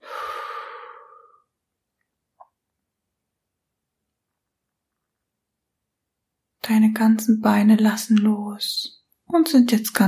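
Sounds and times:
deep breath out during a guided relaxation meditation: 0.0s - 1.6s
speech: 6.7s - 10.0s.

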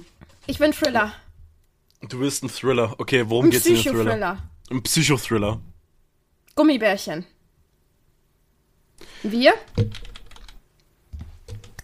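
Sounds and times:
speech: 0.5s - 1.2s, 2.1s - 5.7s, 6.6s - 7.3s, 9.0s - 10.1s
computer keyboard typing as someone takes notes: 9.7s - 10.6s, 11.5s - 11.8s.

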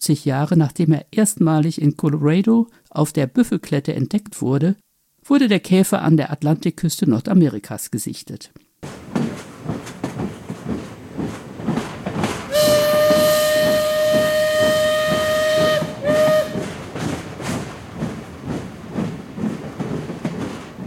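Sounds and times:
speech: 0.0s - 10.0s
steam locomotive rhythmic rattling chug: 8.8s - 20.8s
steam train whistle blowing: 12.5s - 16.8s.

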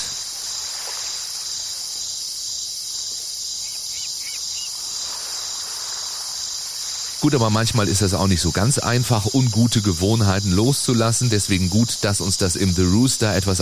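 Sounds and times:
soft constant rushing of the sea: 0.0s - 2.3s, 4.7s - 8.5s
crickets chirping in a high continuous trill in the evening: 0.0s - 13.6s
speech: 7.2s - 13.6s.

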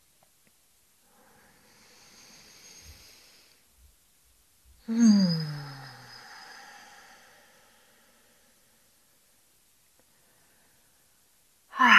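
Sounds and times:
deep breathing in and out during a guided breathing exercise: 1.0s - 3.7s, 4.8s - 9.2s.

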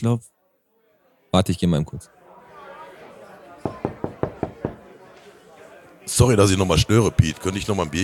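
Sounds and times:
speech: 0.0s - 0.4s, 1.3s - 2.2s, 3.6s - 3.9s, 6.1s - 8.0s
knocking on a door: 3.6s - 4.8s.

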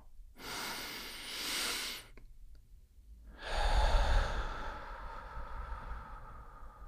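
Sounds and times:
deep breath in through the nose and out through the mouth: 0.4s - 2.2s, 3.3s - 6.8s.

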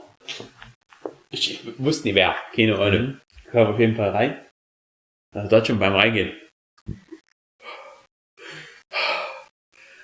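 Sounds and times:
speech: 1.3s - 4.5s, 5.3s - 7.0s
person imitating heavy breathing: 7.6s - 9.5s.

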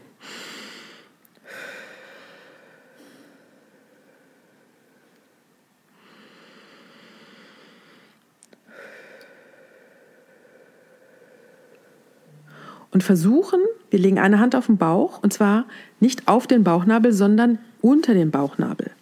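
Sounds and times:
slow breathing in through nose, out through mouth: 0.1s - 13.0s, 15.7s - 16.0s
speech: 13.0s - 18.9s.

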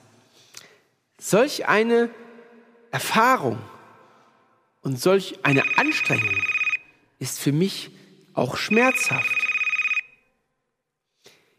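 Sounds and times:
speech: 1.2s - 2.2s, 2.9s - 3.8s, 4.8s - 6.6s, 7.2s - 9.4s
telephone ringing for an incoming caller: 5.5s - 6.8s, 8.7s - 10.2s.

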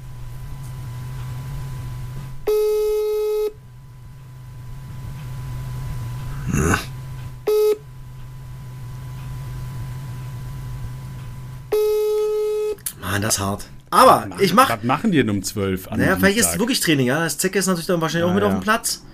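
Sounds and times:
low constant hum: 0.0s - 19.1s
telephone ringback tone on an outgoing call: 2.5s - 3.6s, 7.5s - 7.8s, 11.7s - 12.8s
speech: 13.2s - 19.1s.

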